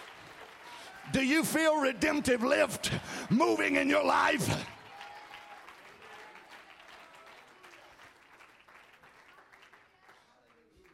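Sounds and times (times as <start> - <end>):
crowd clapping during a sermon: 0.0 - 10.9
speech: 1.1 - 4.8.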